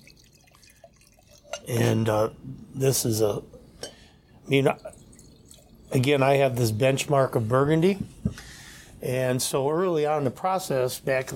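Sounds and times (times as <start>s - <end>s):
Chardonnay wine pouring into a glass: 0.0s - 7.0s
speech: 1.6s - 3.6s, 4.5s - 5.0s, 5.9s - 8.2s, 9.0s - 11.3s.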